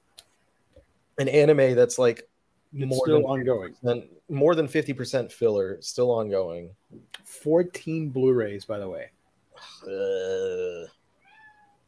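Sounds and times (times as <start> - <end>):
speech: 1.2 - 11.0
cat meowing: 11.2 - 11.8.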